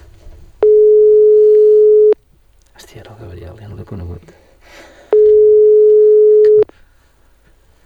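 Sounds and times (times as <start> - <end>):
telephone line tone from an unanswered outgoing call: 0.6 - 2.2, 5.2 - 6.7
speech: 3.2 - 4.5.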